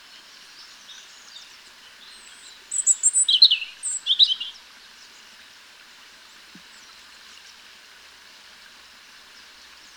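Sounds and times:
European robin singing, Erithacus rubecula: 0.6s - 4.6s.

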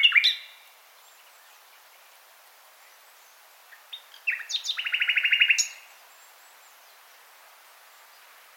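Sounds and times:
common nightingale Luscinia megarhynchos singing: 0.0s - 2.2s, 2.8s - 7.2s.

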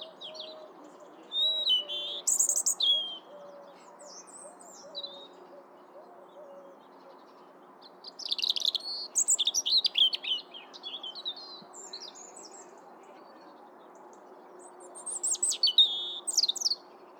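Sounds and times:
European robin Erithacus rubecula singing high trills and sliding notes: 0.0s - 5.4s, 8.0s - 12.7s, 14.6s - 16.9s.

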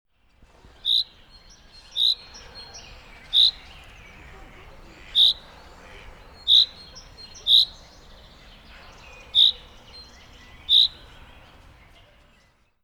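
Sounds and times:
Fringilla coelebs common chaffinch sharp high single calls: 0.7s - 11.9s.

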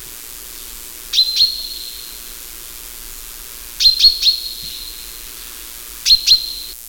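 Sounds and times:
faint background hiss: 0.0s - 6.8s
common chaffinch Fringilla coelebs calls: 0.3s - 6.7s.

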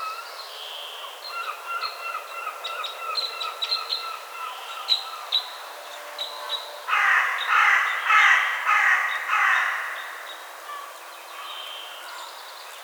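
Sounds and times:
carrion crow cawing: 6.9s - 10.9s.

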